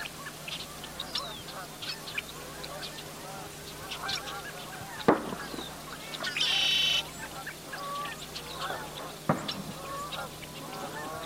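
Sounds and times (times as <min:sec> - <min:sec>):
chorus of geese honking at dawn: 0:00.0 - 0:11.2
smaller birds chirping outdoors: 0:00.0 - 0:11.2
sharp loud pops: 0:05.0 - 0:06.6, 0:09.3 - 0:09.8.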